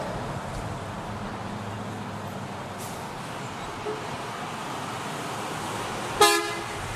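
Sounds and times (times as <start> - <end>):
bus engine and road rumble: 0.0 - 6.9
bus horn toot: 6.2 - 6.8.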